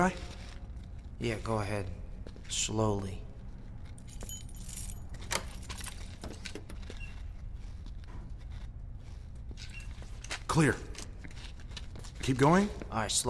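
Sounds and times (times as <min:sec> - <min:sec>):
speech: 0:00.0 - 0:00.3, 0:01.2 - 0:03.2, 0:10.6 - 0:10.9, 0:12.2 - 0:13.2
keys jangling and clinking against a door lock: 0:03.8 - 0:07.0.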